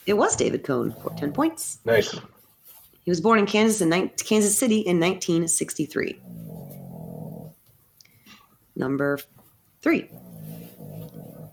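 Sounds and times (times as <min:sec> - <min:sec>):
speech: 0:00.0 - 0:02.4, 0:03.1 - 0:06.6, 0:08.8 - 0:10.5
dog snoring: 0:06.1 - 0:07.6, 0:10.1 - 0:11.5.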